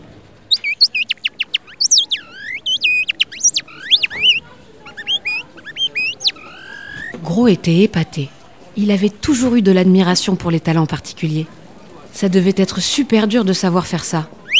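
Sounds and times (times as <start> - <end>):
small bird whistle trilling and chirping imitating birdsong: 0.5 - 7.2
speech: 7.2 - 11.6, 12.2 - 14.4.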